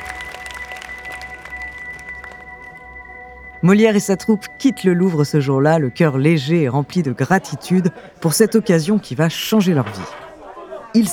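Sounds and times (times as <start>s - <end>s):
court crowd applauding: 0.0s - 3.4s
faint sustained tone: 0.0s - 6.8s
speech: 3.6s - 10.2s, 10.9s - 11.1s
laughter: 7.0s - 11.1s.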